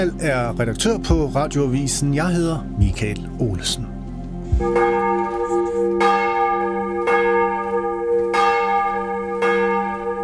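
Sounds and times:
speech: 0.0s - 3.9s, 4.6s - 6.0s
large church bells ringing for morning service in Copenhagen Denmark: 4.5s - 10.2s.

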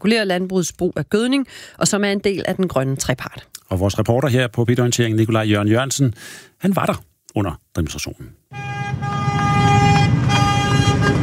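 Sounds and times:
speech: 0.0s - 9.1s
tractor horns honking during a farmers' demonstration: 8.5s - 11.2s
tractor engine rumble: 8.7s - 11.2s.

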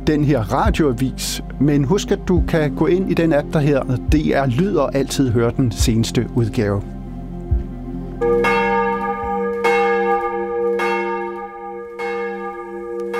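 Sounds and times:
speech: 0.0s - 7.0s
church bells ringing for morning devotion in Copenhagen: 8.2s - 13.1s.

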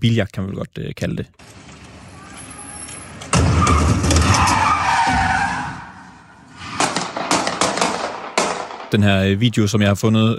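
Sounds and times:
speech: 0.0s - 1.6s, 8.9s - 10.3s
car tires screeching through a sharp turn: 1.4s - 7.9s.

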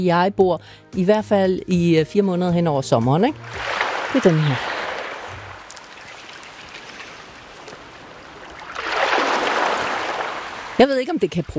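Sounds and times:
speech: 0.0s - 4.8s, 10.8s - 11.5s
small sea waves lapping at the shore by a summer house: 3.3s - 11.5s.

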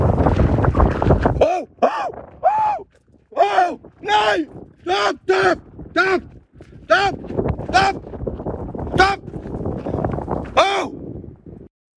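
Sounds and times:
wind south of Skagen, Denmark: 0.0s - 11.7s
runner shouting loudly to drive off a wolf south of Skagen, Denmark: 1.4s - 6.3s, 6.9s - 8.0s, 8.9s - 9.3s, 10.5s - 11.0s.

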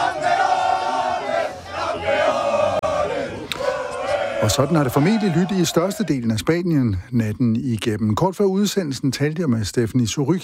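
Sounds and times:
large crowd cheering in celebration: 0.0s - 6.3s
speech: 4.4s - 10.4s.

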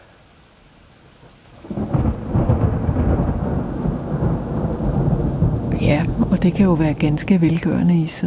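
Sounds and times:
faint hiss of rain: 0.0s - 8.2s
deep rumbling thunderclap: 1.6s - 7.8s
speech: 6.4s - 8.2s.

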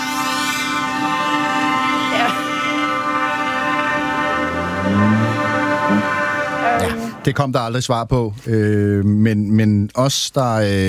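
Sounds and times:
tractor horns blaring at a tractor demonstration outside Christiansborg: 0.0s - 7.8s
low tractor engine rumble: 0.0s - 9.1s
speech: 6.8s - 10.8s.

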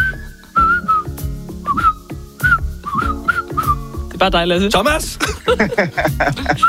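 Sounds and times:
person whistling a song melody: 0.0s - 4.0s
rhythmic backing music with punchy beats and bass: 0.0s - 6.6s
speech: 4.2s - 6.6s
laughter: 5.2s - 6.6s.

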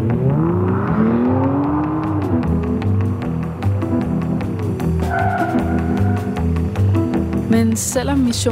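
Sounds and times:
car engine revving with the accelerator floored: 0.0s - 6.8s
speech: 7.6s - 8.5s.

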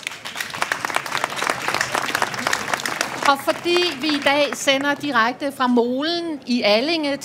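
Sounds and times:
audience applauding for a panel: 0.0s - 5.3s
speech: 3.3s - 7.2s.

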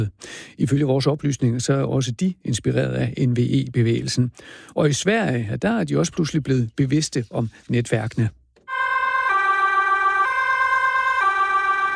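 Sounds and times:
speech: 0.0s - 8.4s
emergency vehicle siren in a hi-lo pattern: 8.6s - 11.9s.

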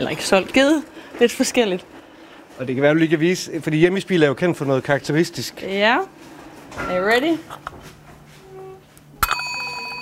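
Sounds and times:
speech: 0.0s - 2.0s, 2.6s - 7.8s
small broken bell struck with a spoon: 9.2s - 10.0s.

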